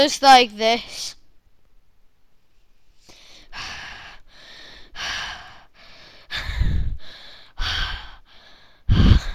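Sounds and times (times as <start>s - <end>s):
speech: 0.0s - 1.2s
heavy rhythmic breathing into a microphone: 3.0s - 9.3s.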